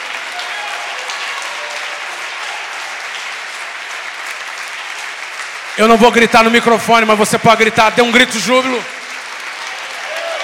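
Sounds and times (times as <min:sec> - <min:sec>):
church congregation applauding: 0:00.0 - 0:10.4
speech: 0:05.8 - 0:09.0.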